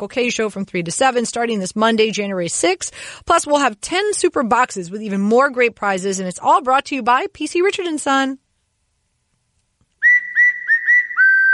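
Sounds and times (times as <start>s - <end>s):
speech: 0.0s - 8.4s
person whistling a short bright tune: 10.0s - 11.5s.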